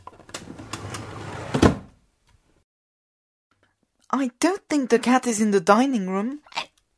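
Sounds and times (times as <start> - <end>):
drawer holding felt-tip pens sliding open with a low scraping rumble: 0.0 - 2.0
drawer thump as it stops: 1.1 - 2.0
speech: 4.1 - 6.6.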